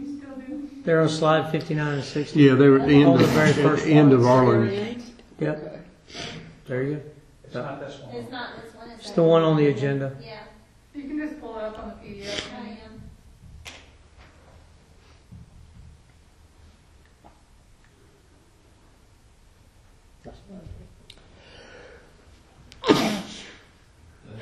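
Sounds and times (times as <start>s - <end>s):
speech: 0.8s - 10.4s
murmuring voices: 2.0s - 5.0s
person sneezing during a meeting: 22.8s - 23.7s.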